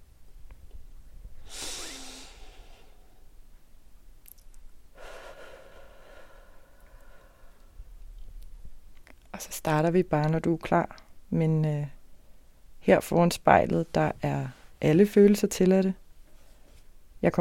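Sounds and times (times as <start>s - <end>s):
person taking a slow deep breath in and out: 1.4s - 3.4s, 4.9s - 7.8s
speech: 9.4s - 12.0s, 12.8s - 16.0s, 17.2s - 17.3s.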